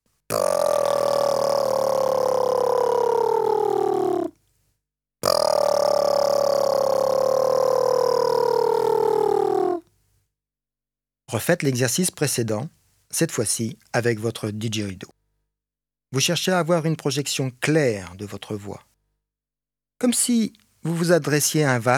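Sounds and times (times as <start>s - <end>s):
lip buzzing vocal exercise: 0.3s - 4.3s, 5.2s - 9.7s
speech: 11.3s - 15.1s, 16.1s - 18.9s, 20.0s - 21.9s.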